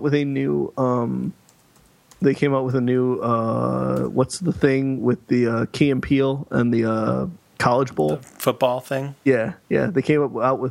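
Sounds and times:
speech: 0.0 - 1.4, 2.2 - 10.7
soft computer keyboard typing: 1.4 - 2.2.

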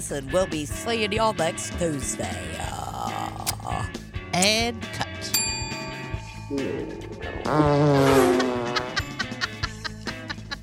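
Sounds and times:
speech: 0.0 - 5.1, 6.5 - 8.4
long loud buzzy fart with short choppy bursts: 7.5 - 9.0
laughter: 8.1 - 10.6.

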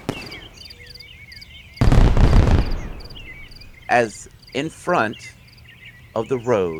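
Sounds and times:
fireworks going off outdoors with a sharp crack and booming burst: 0.0 - 1.0, 1.8 - 4.2
birds chirping: 0.0 - 6.7
speech: 3.9 - 5.4, 6.1 - 6.7.

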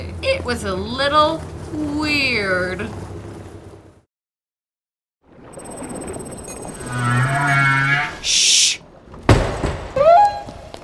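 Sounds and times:
speech: 0.4 - 3.1
whale low rumbling moans: 6.6 - 8.4
whale rising tonal wails and cries: 6.7 - 8.7, 10.0 - 10.6.

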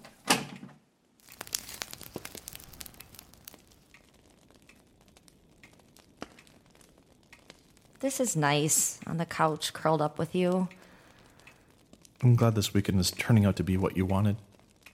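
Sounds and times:
paper crumpling while starting a fire: 1.2 - 3.6
speech: 8.0 - 10.8, 12.2 - 14.5.

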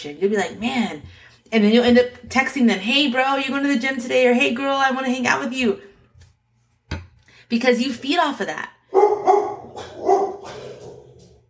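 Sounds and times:
speech: 0.0 - 5.9, 7.5 - 10.6
dogs barking: 8.9 - 11.4.

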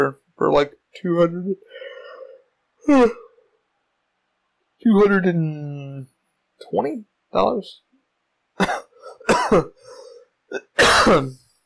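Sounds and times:
speech: 0.0 - 1.8, 2.8 - 3.2, 4.8 - 7.8, 8.6 - 11.4
person coughing: 2.9 - 3.3, 8.6 - 11.4.

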